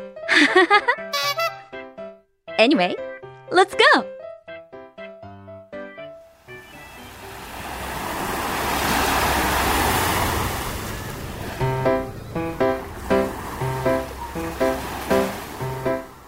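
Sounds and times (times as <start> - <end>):
laughter: 0.3 - 1.6
speech: 0.4 - 1.5, 2.6 - 4.2
short melody of bright plucked notes: 0.9 - 4.0, 11.6 - 16.2
ocean wave breaking on a beach in Kanagawa Japan: 6.4 - 16.2.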